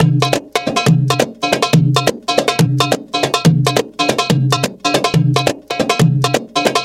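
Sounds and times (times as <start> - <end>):
drum percussion break: 0.0 - 6.8.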